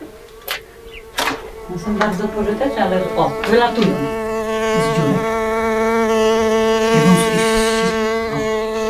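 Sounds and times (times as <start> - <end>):
bumblebees buzzing, flying out of a hole: 0.0 - 8.8
sharp clicks: 0.3 - 2.1
speech: 1.7 - 5.4.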